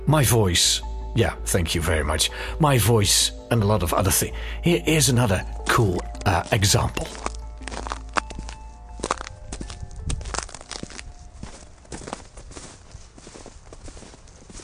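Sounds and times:
speech: 0.1s - 7.3s
footsteps crunching through snow: 5.6s - 14.6s.

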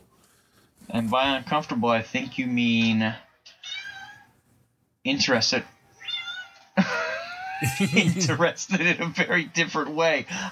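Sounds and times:
speech: 0.9s - 3.3s, 5.0s - 5.7s, 7.6s - 10.4s
cat meowing: 2.8s - 4.4s, 5.6s - 7.6s
laughter: 6.8s - 10.4s.

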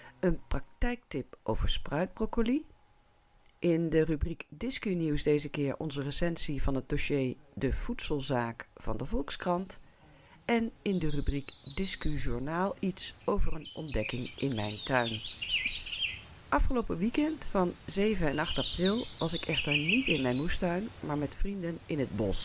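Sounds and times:
speech: 0.2s - 2.7s, 3.6s - 9.9s, 10.5s - 15.8s, 16.5s - 22.4s
small birds chirping faintly: 9.4s - 22.4s.

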